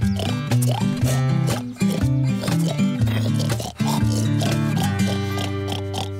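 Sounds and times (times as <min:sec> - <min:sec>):
loud bouncy music: 0:00.0 - 0:06.1
pig oinking: 0:00.0 - 0:06.1.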